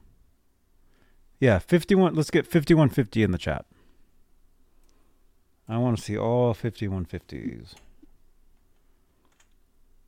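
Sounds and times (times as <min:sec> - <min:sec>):
low hum: 0:00.0 - 0:10.0
speech: 0:01.4 - 0:03.8, 0:05.7 - 0:07.9
soft keystrokes on a computer keyboard: 0:09.2 - 0:09.6.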